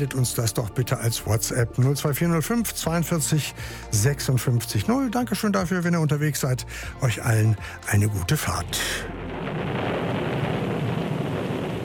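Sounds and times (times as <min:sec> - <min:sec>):
speech: 0:00.0 - 0:09.9
heavy rain: 0:07.5 - 0:11.8
thunder rumbling: 0:07.5 - 0:11.8.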